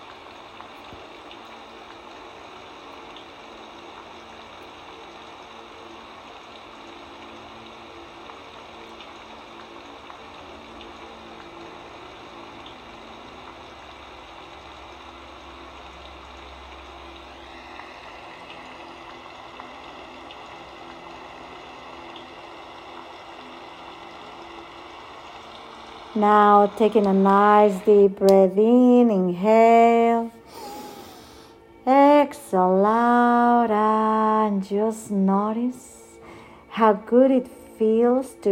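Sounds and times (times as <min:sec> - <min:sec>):
steady rain pouring down: 0:00.0 - 0:28.9
speech: 0:26.2 - 0:30.3, 0:32.5 - 0:35.9, 0:36.8 - 0:38.5.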